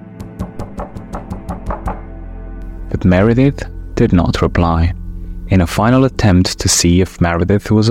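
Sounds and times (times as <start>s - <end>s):
firm knocking on a door: 0.2s - 2.1s
speech: 3.0s - 7.9s.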